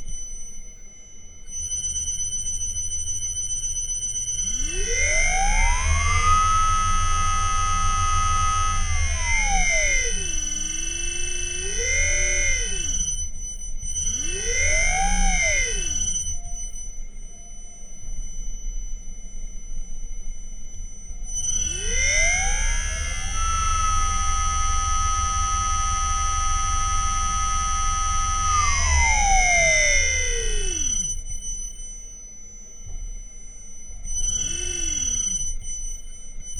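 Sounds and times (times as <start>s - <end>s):
Liebherr motor accelerating from zero to 2600 rpm with field weakening: 4.5s - 13.1s, 14.0s - 16.2s, 21.4s - 31.2s, 34.2s - 35.5s.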